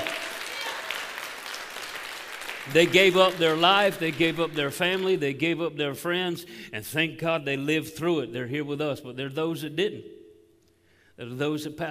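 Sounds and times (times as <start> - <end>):
large audience applauding: 0.0 - 5.1
speech: 2.7 - 10.2, 11.2 - 11.8.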